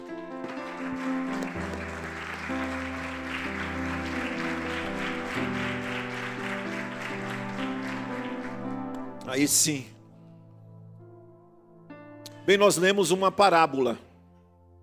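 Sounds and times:
church audience applauding: 0.0s - 9.6s
sustained keyboard chords: 0.0s - 14.8s
speech: 9.3s - 9.9s, 12.5s - 14.1s.

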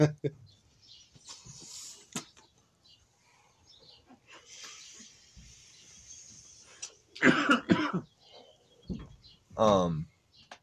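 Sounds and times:
person coughing: 7.2s - 8.1s.

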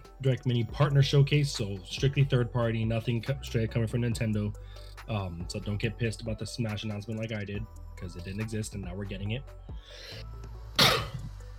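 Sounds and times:
speech: 0.2s - 10.9s
person sneezing: 10.8s - 11.3s.

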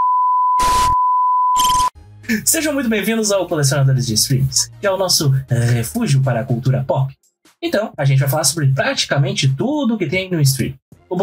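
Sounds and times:
steady high beep tone in electronic intro jingle: 0.0s - 2.0s
speech: 2.3s - 11.2s.

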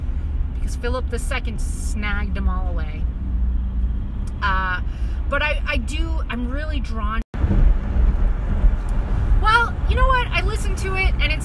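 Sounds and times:
steady low rumble of traffic: 0.0s - 11.4s
speech: 0.7s - 3.2s, 4.4s - 7.2s, 10.5s - 11.4s.

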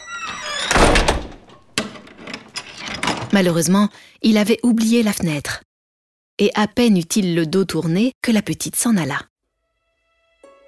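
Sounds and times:
lock being turned with clicks: 0.0s - 3.5s
heavy stable door creaking: 0.0s - 3.6s
speech: 3.3s - 5.6s, 6.4s - 9.3s.

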